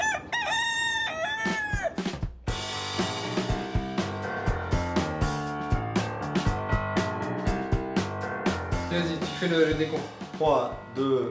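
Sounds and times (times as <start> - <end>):
rooster crowing: 0.0 - 2.1
lively podcast theme jingle with punchy beat and bright layered instruments: 2.0 - 11.2
speech: 9.0 - 11.2.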